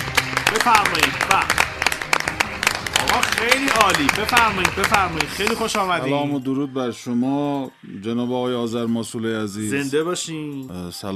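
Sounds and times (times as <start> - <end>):
crowd applauding a singer: 0.0 - 6.2
people calling out and cheering: 0.0 - 6.2
speech: 0.5 - 1.6, 3.1 - 11.1.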